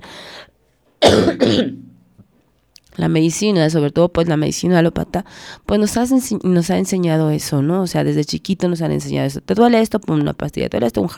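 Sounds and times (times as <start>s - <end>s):
person coughing: 1.0s - 2.0s
speech: 1.1s - 1.9s, 3.0s - 11.1s.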